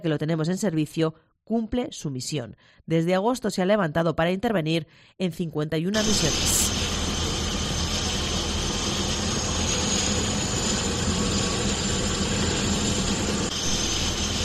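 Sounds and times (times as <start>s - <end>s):
speech: 0.0s - 6.8s
medical emergency rescue helicopter engine whine: 6.0s - 14.4s.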